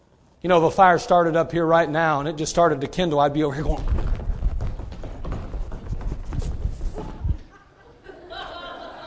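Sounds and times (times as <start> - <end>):
speech: 0.4 - 4.0
feet stomping on a floor: 3.6 - 7.5
people chuckling: 6.9 - 9.0.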